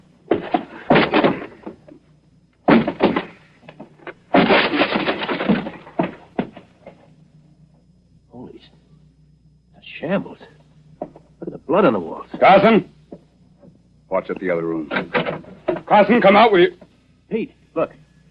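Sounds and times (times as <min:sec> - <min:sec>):
wooden door being forced open: 0:00.3 - 0:01.8, 0:02.7 - 0:06.6, 0:14.9 - 0:15.9
speech: 0:10.1 - 0:10.4, 0:11.7 - 0:12.9, 0:14.2 - 0:18.0.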